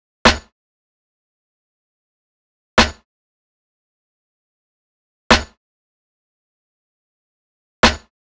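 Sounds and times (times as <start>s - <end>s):
snare drum: 0.3s - 0.5s, 2.8s - 3.0s, 5.3s - 5.6s, 7.8s - 8.1s.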